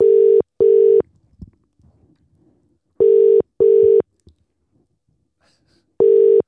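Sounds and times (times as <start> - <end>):
phone ringback tone on an outgoing call: 0.0 - 1.0, 3.0 - 4.0, 6.0 - 6.4.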